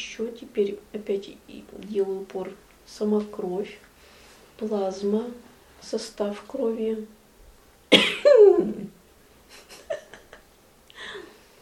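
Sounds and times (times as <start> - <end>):
speech: 0.0 - 3.9, 4.6 - 7.2, 7.9 - 9.7
loud cough with a rough throaty tail: 7.9 - 8.3.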